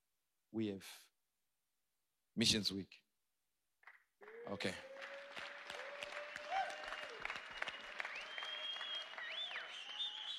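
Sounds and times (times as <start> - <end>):
speech: 0.5 - 1.1, 2.4 - 3.0, 4.4 - 5.0
faint scattered audience clapping: 3.8 - 10.3.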